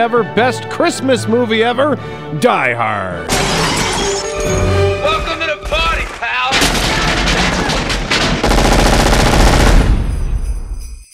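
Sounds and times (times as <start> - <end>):
speech: 0.0 - 5.2
machine gun fire in rapid bursts: 6.5 - 10.4.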